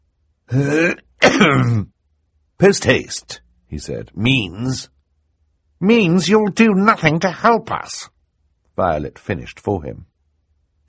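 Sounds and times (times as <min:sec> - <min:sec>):
man clearing his throat: 0:00.5 - 0:01.9
speech: 0:00.5 - 0:01.9, 0:02.6 - 0:05.0, 0:05.8 - 0:08.1, 0:08.8 - 0:10.1.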